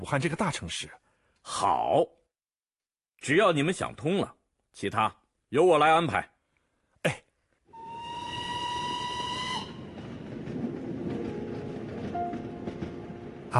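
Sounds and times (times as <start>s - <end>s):
speech: 0.0s - 2.2s, 3.2s - 6.3s, 7.0s - 7.2s
whistle-like tone: 7.8s - 9.8s
passenger train bound for Yan'an rumbling: 8.0s - 13.5s.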